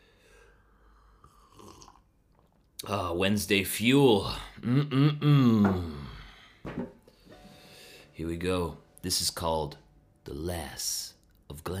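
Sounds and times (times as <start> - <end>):
person slurping a drink: 1.2 - 2.7
speech: 2.8 - 6.0, 8.2 - 11.7.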